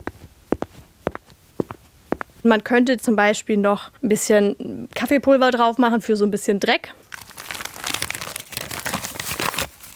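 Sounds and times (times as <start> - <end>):
gritty foley footsteps scuffing across plain asphalt: 0.0 - 2.6
speech: 2.4 - 7.0.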